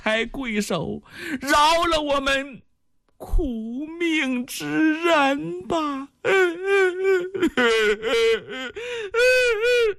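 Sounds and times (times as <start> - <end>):
speech: 0.0 - 9.9
person imitating a father and daughter crying: 4.8 - 9.9.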